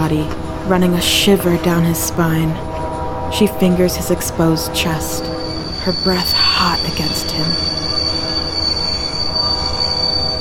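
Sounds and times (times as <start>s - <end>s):
speech: 0.1s - 2.7s, 3.3s - 7.6s
train wheels squealing against rails while braking to a violent halt: 2.8s - 10.3s.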